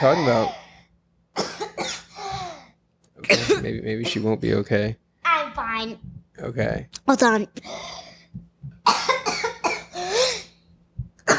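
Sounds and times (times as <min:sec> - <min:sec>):
speech: 0:00.0 - 0:00.6, 0:03.2 - 0:05.0, 0:05.8 - 0:08.0
person coughing harshly and wheezily: 0:00.0 - 0:00.7, 0:01.4 - 0:02.6, 0:03.2 - 0:04.4, 0:08.9 - 0:10.5
short breath: 0:00.0 - 0:00.9, 0:07.6 - 0:08.4, 0:10.0 - 0:10.5.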